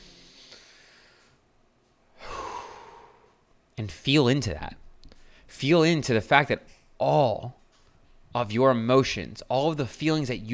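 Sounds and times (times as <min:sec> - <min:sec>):
single deep breath: 0:00.0 - 0:01.4, 0:02.2 - 0:03.4, 0:05.1 - 0:05.5
speech: 0:03.8 - 0:04.8, 0:05.5 - 0:07.6, 0:08.3 - 0:10.5.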